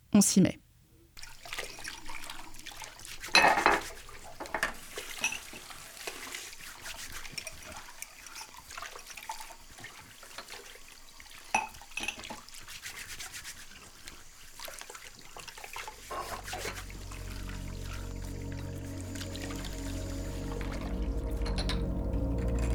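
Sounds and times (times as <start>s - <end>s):
speech: 0.2s - 0.6s
dishes and utensils clinking in water while washing by hand: 1.2s - 12.8s, 14.6s - 17.6s, 20.5s - 22.7s
water splashing and trickling: 1.2s - 22.7s.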